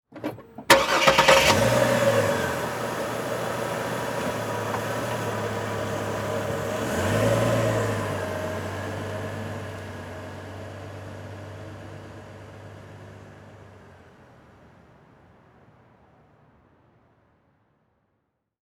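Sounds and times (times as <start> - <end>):
Envoy truck starting and driving off slowly: 0.1 - 14.6.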